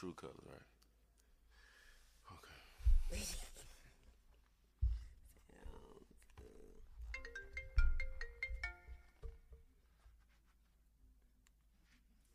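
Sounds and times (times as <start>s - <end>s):
speech: 0.0s - 0.8s, 2.3s - 3.7s
mobile phone ringtone with bright electronic melody: 7.2s - 9.2s.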